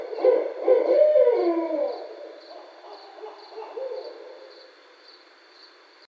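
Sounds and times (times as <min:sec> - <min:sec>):
barred owl giving harsh excited hoots and cackles: 0:00.0 - 0:04.6
faint steady high hum: 0:00.0 - 0:06.0.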